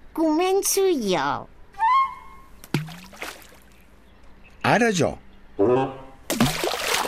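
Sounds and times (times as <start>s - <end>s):
speech: 0.2s - 1.6s, 4.6s - 6.0s
cartoonish whistling tone: 1.8s - 2.5s
small pebble splashing into river water: 2.6s - 3.7s, 6.3s - 7.0s.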